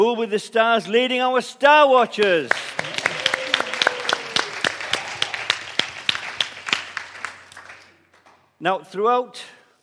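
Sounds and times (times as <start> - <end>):
speech: 0.0 - 2.9, 8.6 - 9.6
crowd applauding: 2.5 - 8.4.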